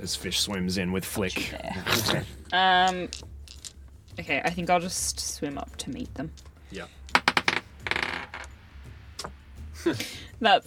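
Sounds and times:
speech: 0.0s - 3.3s, 4.2s - 7.0s, 9.8s - 10.6s
d20 die clattering across a hard table: 7.1s - 8.6s.

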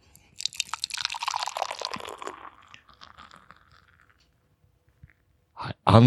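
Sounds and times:
fizzy hazy IPA beer pouring into a Rueda glass: 0.3s - 4.5s.

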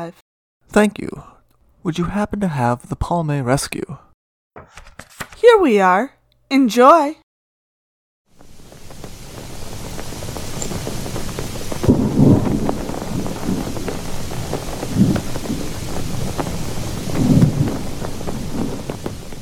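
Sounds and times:
speech: 0.0s - 4.0s, 4.6s - 7.2s
steady rain: 8.3s - 19.4s
gusts of wind: 8.4s - 19.4s
rumble of thunder: 8.4s - 19.4s.

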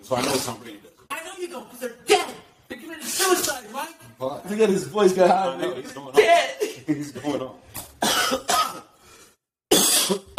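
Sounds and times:
speech: 0.0s - 2.2s, 3.1s - 7.6s
person coughing loudly: 8.0s - 9.0s, 9.7s - 10.3s.

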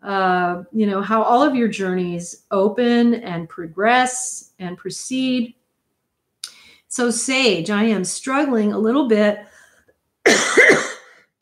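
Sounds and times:
speech: 0.0s - 5.6s, 6.9s - 9.5s
person coughing: 10.3s - 11.3s.

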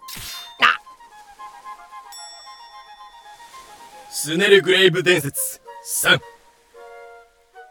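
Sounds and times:
cutlass swinging whoosh: 0.0s - 0.8s
faint steady metallic ring of the cutlass: 2.1s - 3.9s
speech: 4.2s - 6.3s.

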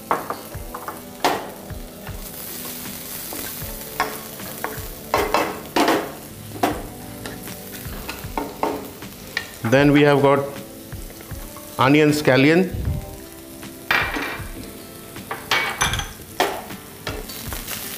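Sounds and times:
garlic sizzling in hot oil in a wok over a high flame: 0.0s - 17.9s
speech: 9.7s - 10.6s, 11.8s - 12.8s.

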